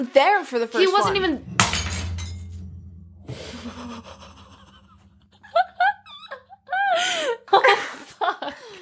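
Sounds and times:
speech: 0:00.0 - 0:01.6
wine glass shattering: 0:01.5 - 0:02.6
people laughing: 0:03.4 - 0:08.7.

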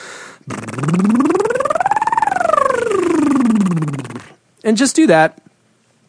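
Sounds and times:
vocal siren exercise gliding low to high: 0:00.4 - 0:04.4
speech: 0:04.7 - 0:05.4.

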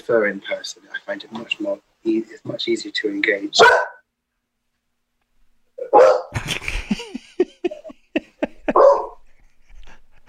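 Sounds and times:
speech: 0:00.0 - 0:03.9
big dog barking: 0:03.6 - 0:04.0, 0:05.8 - 0:06.4, 0:08.6 - 0:09.2
laughter: 0:06.3 - 0:10.2.

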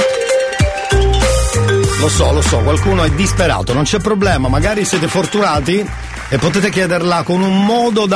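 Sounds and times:
electronic gangster-themed phone ringtone: 0:00.0 - 0:02.2
speech: 0:02.0 - 0:08.1.

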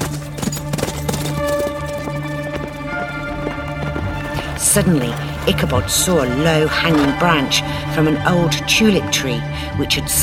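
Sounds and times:
horse hooves galloping: 0:00.0 - 0:07.7
speech: 0:04.7 - 0:10.2.

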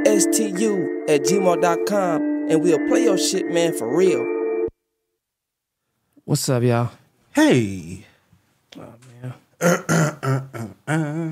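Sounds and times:
speech: 0:00.0 - 0:04.4, 0:06.3 - 0:08.1, 0:08.7 - 0:11.3
person clearing throat: 0:09.6 - 0:11.3.

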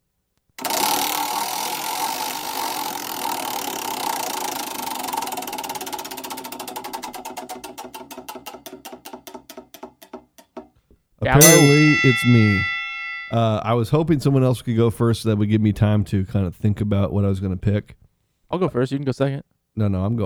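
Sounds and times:
spinning prize wheel clicking against its pointer: 0:00.6 - 0:09.1, 0:11.4 - 0:13.4
speech: 0:11.2 - 0:12.7, 0:13.3 - 0:20.2.

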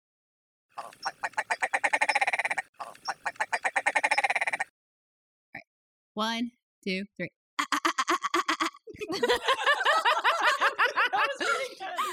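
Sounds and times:
speech: 0:00.8 - 0:01.4, 0:06.2 - 0:07.4, 0:09.1 - 0:09.8
ptarmigan call played from a video: 0:00.8 - 0:04.7
laughter: 0:07.6 - 0:12.1.

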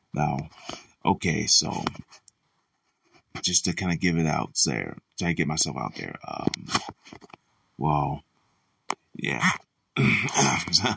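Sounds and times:
speech: 0:00.2 - 0:02.2, 0:03.4 - 0:08.3, 0:09.2 - 0:10.9
person clearing throat after taking a cough drop: 0:10.0 - 0:10.9.

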